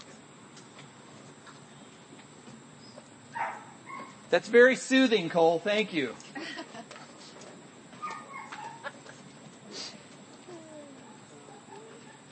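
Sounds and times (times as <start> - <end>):
speech: 4.3 - 6.2
dog whimpering: 8.0 - 9.0, 10.4 - 12.3.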